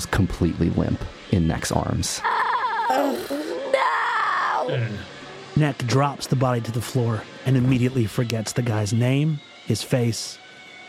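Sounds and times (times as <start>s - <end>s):
speech: 0.0s - 3.5s, 4.6s - 10.4s
loud anguished human scream: 2.2s - 5.0s
person groaning: 2.9s - 3.8s, 4.6s - 5.0s.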